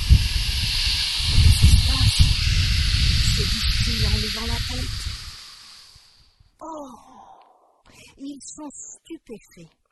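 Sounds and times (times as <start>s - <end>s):
violent gust of wind: 0.0s - 6.3s
speech: 4.0s - 5.0s, 8.2s - 9.8s.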